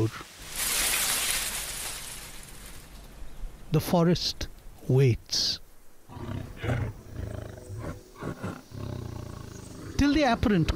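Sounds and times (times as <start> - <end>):
speech: 0.0 - 0.3, 3.7 - 7.0, 10.0 - 10.7
tiger growling in a forest: 6.1 - 10.7.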